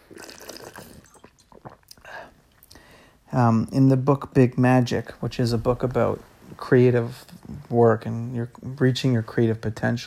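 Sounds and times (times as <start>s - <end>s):
mouth and swallowing noises: 0.0s - 2.8s
person sipping water: 0.0s - 2.9s
speech: 3.4s - 10.0s.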